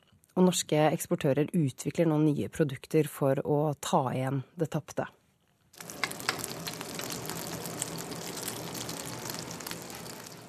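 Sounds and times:
speech: 0.4 - 5.2
Norwegian salt cod frying in a pot at a restaurant in Rio de Janeiro: 5.8 - 10.4.

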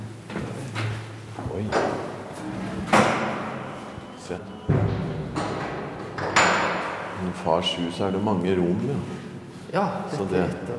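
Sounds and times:
speech: 1.6 - 2.6, 4.3 - 5.0, 7.2 - 10.7
door being closed with a firm solid thud: 2.8 - 3.7, 4.6 - 7.2.

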